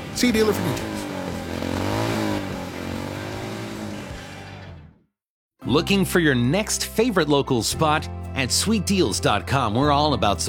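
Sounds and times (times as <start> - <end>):
Harley-Davidson motorcycle engine revving: 0.0 - 4.9
speech: 0.2 - 1.0, 5.7 - 10.4.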